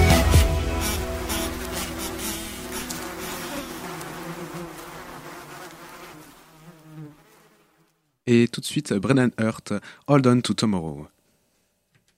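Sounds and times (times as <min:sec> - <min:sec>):
bee-like insect buzzing: 0:00.2 - 0:08.2
speech: 0:08.3 - 0:11.1.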